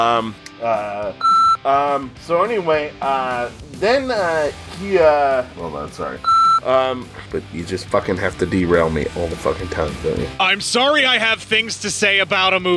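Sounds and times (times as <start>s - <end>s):
speech: 0.0s - 12.7s
short steady electronic beep: 1.2s - 1.6s, 6.2s - 6.7s.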